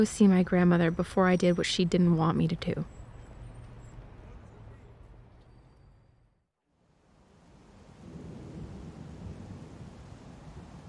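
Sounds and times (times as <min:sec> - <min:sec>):
speech: 0:00.0 - 0:03.0
constant rainy hiss: 0:06.9 - 0:10.8
low rolling thunder: 0:07.6 - 0:10.8.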